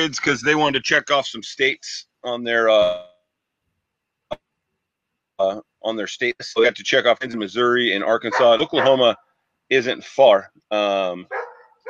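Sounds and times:
speech: 0.0s - 3.1s, 5.4s - 11.8s
dog barking: 8.3s - 9.1s, 11.3s - 11.8s.

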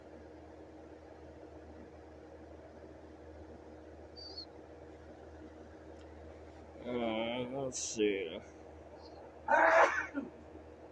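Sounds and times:
speech: 7.7s - 8.6s
loud sneeze: 9.5s - 10.3s.

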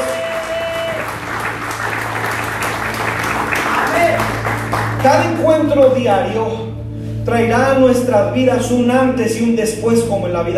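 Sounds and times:
large audience applauding loudly: 0.0s - 5.4s
speech: 5.0s - 10.5s.

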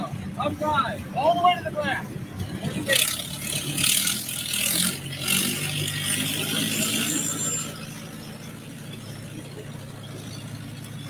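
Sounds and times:
continuous broadband roar: 0.0s - 11.0s
speech: 0.4s - 2.2s
vintage tractor engine revving and labouring during tractor pull: 2.4s - 11.0s.

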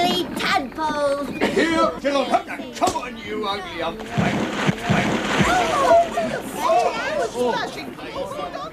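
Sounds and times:
voices talking and calling out: 0.0s - 8.7s
speech: 0.8s - 8.6s
water splashing as something wades across the river Jordan: 3.9s - 7.8s.

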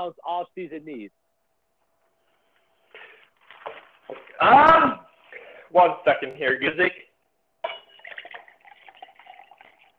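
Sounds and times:
speech: 0.0s - 1.2s, 4.1s - 5.0s, 5.7s - 7.0s
liquid pouring into a glass or cup: 7.7s - 9.9s.

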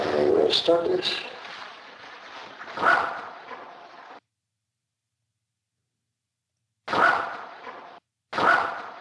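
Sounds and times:
speech: 0.2s - 1.3s
dog barking: 2.7s - 3.9s, 6.9s - 8.9s.

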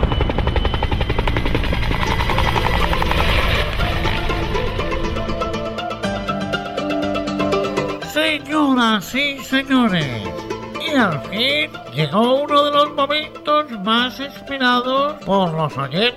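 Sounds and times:
helicopter rotor chopping: 0.0s - 6.5s
helicopter engine whine: 0.0s - 8.0s
speech: 8.7s - 16.1s.

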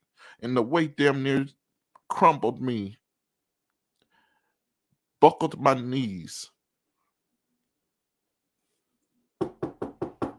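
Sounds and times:
speech: 0.4s - 3.0s, 5.2s - 6.5s
firm knocking on a door: 9.4s - 10.3s.

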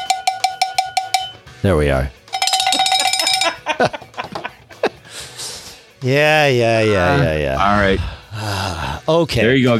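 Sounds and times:
cowbell clanking: 0.0s - 1.5s, 2.2s - 3.8s
speech: 1.6s - 2.2s, 3.8s - 4.1s, 6.0s - 9.7s
people laughing: 3.0s - 5.3s
breathy snorts: 7.7s - 9.1s.

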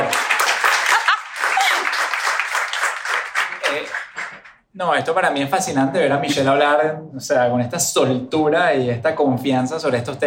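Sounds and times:
applause: 0.0s - 4.6s
speech: 4.8s - 10.2s.

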